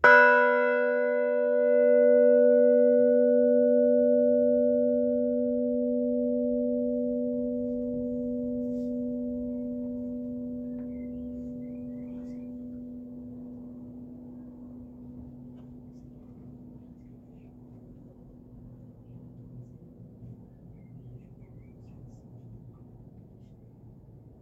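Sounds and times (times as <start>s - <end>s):
five bells ringing: 0.0s - 18.0s.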